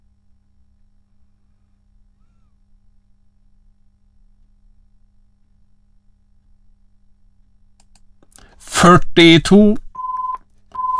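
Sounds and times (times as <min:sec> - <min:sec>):
speech: 0:08.6 - 0:09.8
telephone-style electronic ringing tone during a bingo game: 0:10.0 - 0:10.9.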